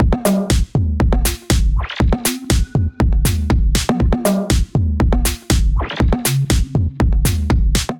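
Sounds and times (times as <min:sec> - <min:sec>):
drum kit: 0:00.0 - 0:07.9.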